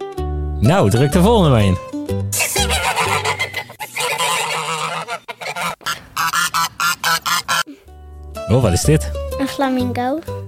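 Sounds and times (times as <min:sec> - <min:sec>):
speech: 0:00.6 - 0:02.5, 0:08.5 - 0:10.4
goose honking: 0:02.4 - 0:07.7.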